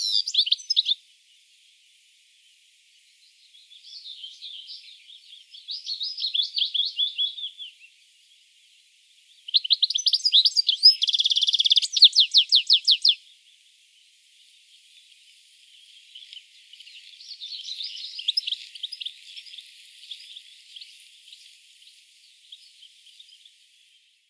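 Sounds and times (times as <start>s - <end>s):
European goldfinch Carduelis carduelis song: 0.0s - 1.0s, 3.2s - 8.0s, 9.2s - 13.6s, 14.4s - 24.2s.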